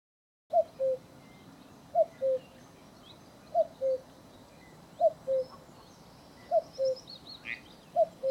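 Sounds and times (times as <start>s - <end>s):
common cuckoo calling: 0.5s - 1.1s, 1.9s - 2.6s, 3.5s - 4.1s, 5.0s - 8.2s
faint birdsong: 0.5s - 8.2s
soft outdoor hiss: 0.5s - 8.2s.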